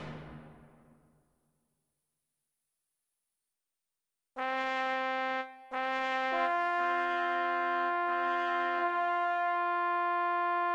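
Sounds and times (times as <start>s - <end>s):
MIDI bugle call: 4.4s - 10.7s.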